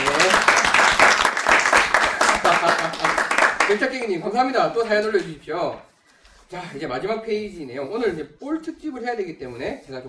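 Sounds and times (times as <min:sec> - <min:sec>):
audience applause: 0:00.0 - 0:04.1
laughter: 0:02.1 - 0:03.6
speech: 0:03.7 - 0:05.9, 0:06.5 - 0:10.0.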